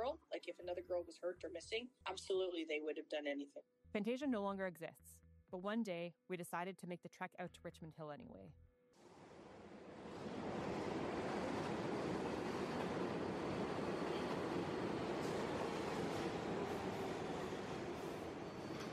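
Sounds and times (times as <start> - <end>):
speech: 0.1 - 9.1
subway train rumbling toward Richmond Hill heard on board: 9.0 - 18.9.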